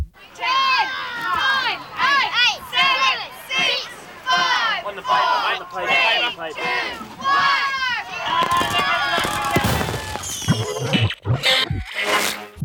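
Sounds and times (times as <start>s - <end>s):
crowd of children shouting and screaming excitedly: 0.2s - 10.5s
fireworks popping: 8.3s - 12.5s.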